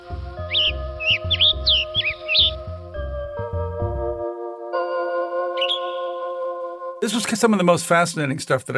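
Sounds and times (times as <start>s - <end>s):
steady droning music: 0.0s - 7.4s
western tanager giving sharp rising chirps: 0.4s - 3.0s, 5.5s - 6.2s
speech: 7.1s - 8.7s.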